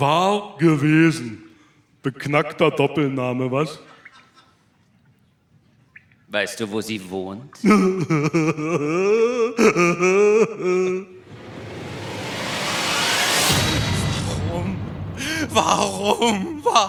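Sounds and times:
speech: 0.0 - 1.4, 2.0 - 3.9, 6.3 - 11.2, 15.4 - 16.8
woman wailing and sobbing: 7.6 - 11.2
loud rushing noise: 11.2 - 16.7.

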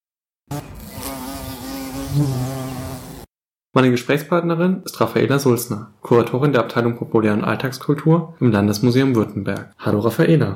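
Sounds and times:
bees buzzing: 0.5 - 3.3
speech: 2.2 - 2.5, 3.7 - 10.5.

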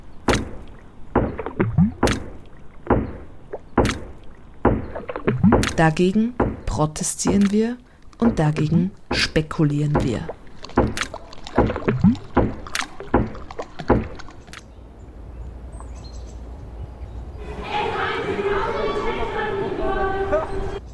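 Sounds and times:
water splashing and dripping in a floodplain forest: 0.0 - 14.8
birds chirping in a floodplain forest: 0.0 - 19.2, 20.0 - 20.9
speech: 5.8 - 10.4.

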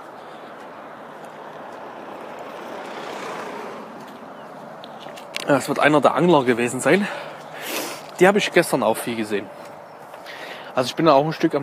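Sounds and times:
car passing by outdoors: 0.0 - 6.0
speech: 5.5 - 7.3, 8.2 - 9.6, 10.8 - 11.6.

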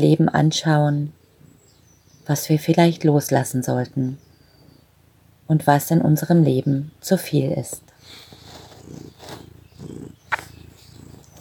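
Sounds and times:
speech: 0.0 - 1.2, 2.3 - 4.2, 5.5 - 8.2
cat purring: 7.9 - 11.3.

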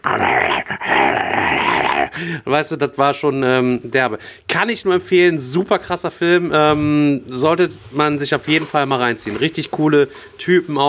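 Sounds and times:
person growling and snarling imitating aggressive dog-like creatures: 0.0 - 2.4
speech: 2.2 - 10.8.

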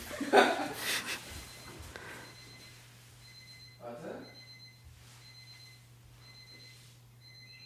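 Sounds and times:
burst of laughter: 0.0 - 1.2
electronic alarm clock beeping: 1.4 - 7.6.

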